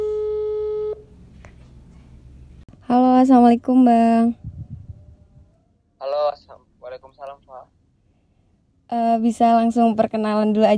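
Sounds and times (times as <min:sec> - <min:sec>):
electronic telephone ringback tone while a call is placed: 0:00.0 - 0:01.0
speech: 0:03.2 - 0:04.5, 0:08.9 - 0:10.7.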